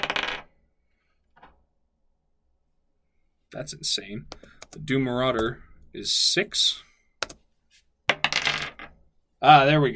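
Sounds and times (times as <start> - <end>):
dice rattling across a hard surface in a tabletop game: 0.0 - 0.5, 8.1 - 9.0
speech: 3.5 - 6.9, 9.4 - 9.9.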